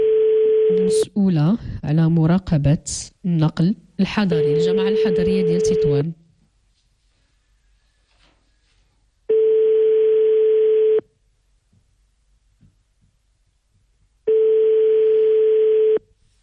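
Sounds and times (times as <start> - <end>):
telephone ringback tone on a call to a mobile number: 0.0 - 1.0, 4.3 - 6.0, 9.3 - 11.0, 14.3 - 16.0
speech: 0.7 - 6.2.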